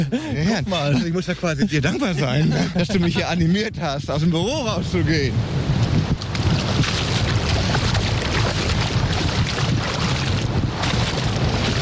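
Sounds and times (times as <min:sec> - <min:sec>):
laughter: 0:00.0 - 0:03.6
speech: 0:00.0 - 0:05.7
wind buffeting over shallow sea water at an island beach: 0:00.0 - 0:11.8
surf washing around feet standing in shallow sea water: 0:05.4 - 0:11.8.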